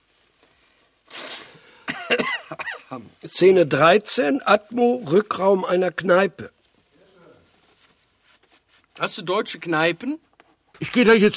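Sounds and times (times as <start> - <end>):
person blowing nose with honking snorts: 1.0 - 1.9
speech: 2.1 - 6.6, 9.0 - 11.3.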